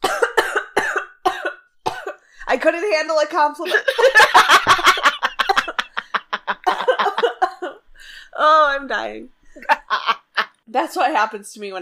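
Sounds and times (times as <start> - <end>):
harsh coughing fit: 0.0 - 2.3, 4.2 - 7.9
speech: 2.5 - 5.1, 8.4 - 11.8
laughter: 3.7 - 7.6, 9.6 - 10.5.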